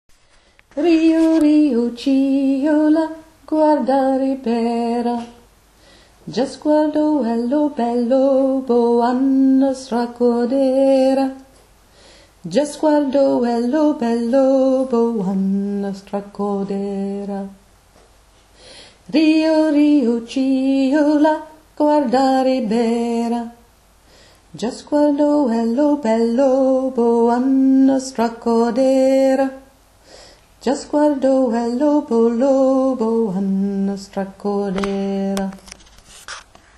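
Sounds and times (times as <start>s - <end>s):
alto voice singing a slow version: 0.8s - 5.6s, 6.2s - 11.5s, 12.4s - 17.7s, 19.1s - 23.8s, 24.5s - 29.8s, 30.6s - 35.6s.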